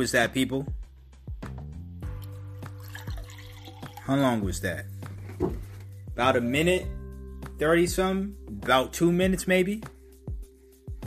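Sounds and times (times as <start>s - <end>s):
speech: 0.0s - 0.8s, 4.1s - 5.6s, 6.2s - 7.0s, 7.6s - 9.9s
water being poured in a steady liquid stream: 2.2s - 4.5s
gurgling drip-like plops: 2.6s - 4.1s.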